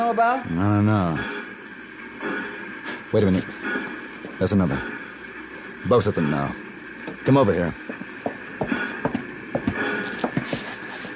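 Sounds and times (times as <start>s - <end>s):
speech: 0.1s - 1.4s, 3.1s - 5.0s, 5.8s - 6.6s, 7.2s - 8.0s
horse hooves clip-clopping: 7.8s - 11.1s.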